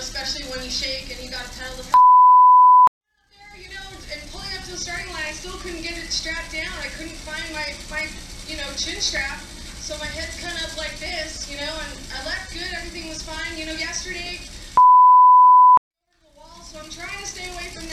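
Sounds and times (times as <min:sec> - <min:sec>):
censor bleeps over swear words: 0:01.9 - 0:02.9, 0:14.8 - 0:15.8.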